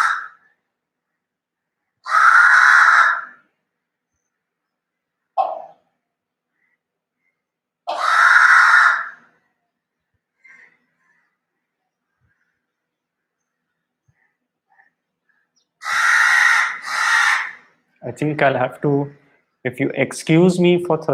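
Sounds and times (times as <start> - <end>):
crow cawing: 0.0 - 0.6, 1.9 - 3.5, 7.9 - 9.4, 10.4 - 11.4, 15.8 - 17.8
speech: 18.0 - 21.1.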